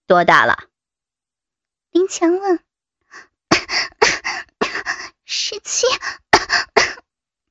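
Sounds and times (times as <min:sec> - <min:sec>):
speech: 0:00.1 - 0:00.7, 0:01.9 - 0:04.0, 0:05.3 - 0:06.2
teenage girl coughing from cigarette smoke: 0:03.5 - 0:04.9, 0:06.2 - 0:07.0.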